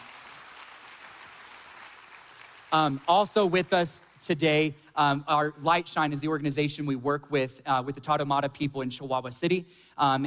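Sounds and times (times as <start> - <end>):
audience applause at a gathering: 0.0 - 3.3
speech: 2.7 - 10.2.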